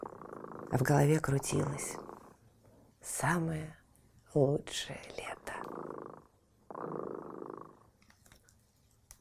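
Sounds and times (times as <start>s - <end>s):
cat purring: 0.0s - 3.3s, 4.6s - 8.0s
speech: 0.7s - 2.0s, 3.0s - 5.4s
faint taps and rustles: 8.0s - 9.1s.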